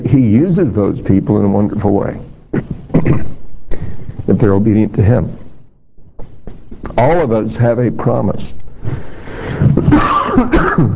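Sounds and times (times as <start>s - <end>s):
speech: 0.1s - 5.4s, 6.8s - 9.1s, 9.9s - 10.9s
raspy throat clearing: 2.5s - 3.5s, 9.8s - 10.9s
person coughing in rough loud bursts: 2.5s - 3.6s, 9.8s - 10.9s.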